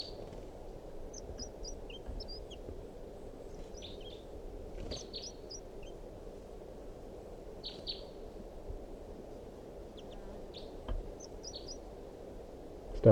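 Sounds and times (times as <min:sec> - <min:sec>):
wild bird giving short sharp alarm calls: 0:00.0 - 0:00.4, 0:01.0 - 0:02.7, 0:03.3 - 0:06.0, 0:07.6 - 0:08.2, 0:09.9 - 0:11.9
steady hum of outdoor ambience: 0:00.0 - 0:13.0.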